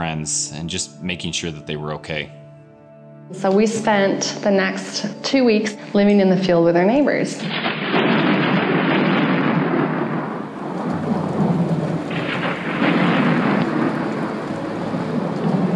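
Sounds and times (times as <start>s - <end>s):
speech: 0.0s - 2.4s, 3.3s - 7.8s
deep thunder rumbling: 7.4s - 15.7s
heavy rain pouring on a tent in a field: 7.6s - 15.7s.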